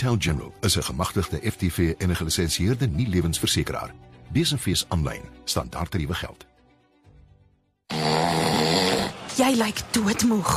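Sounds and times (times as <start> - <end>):
speech: 0.0 - 6.6, 9.4 - 10.5
man snoring: 7.9 - 9.2.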